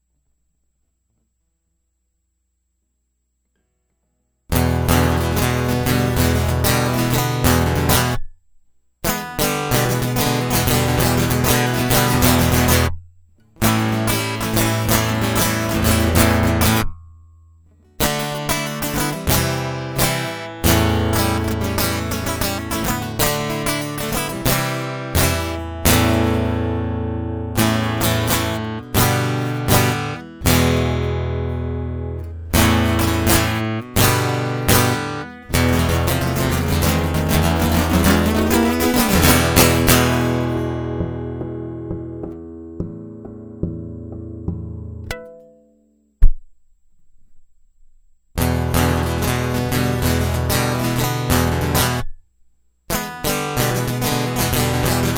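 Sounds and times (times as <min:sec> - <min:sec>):
toggle switch guitar loop: 0:04.5 - 0:08.2, 0:09.0 - 0:17.1, 0:18.0 - 0:45.7, 0:48.4 - 0:52.2, 0:52.9 - 0:55.1.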